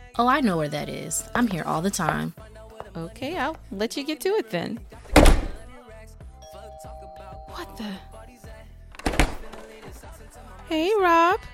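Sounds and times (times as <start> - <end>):
speech: 0.2 - 5.0, 7.8 - 8.1, 10.7 - 11.5
door pulled shut with a solid thud: 5.1 - 5.6, 9.0 - 9.7.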